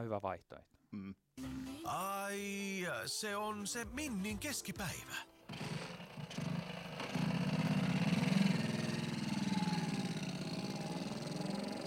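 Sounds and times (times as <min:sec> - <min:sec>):
speech: 0:00.0 - 0:05.6
small moped engine idling: 0:05.5 - 0:11.8.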